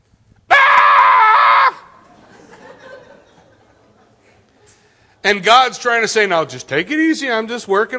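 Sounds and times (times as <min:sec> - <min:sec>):
person imitating a scream: 0:00.5 - 0:02.0
laughter: 0:01.8 - 0:04.9
speech: 0:05.2 - 0:07.9.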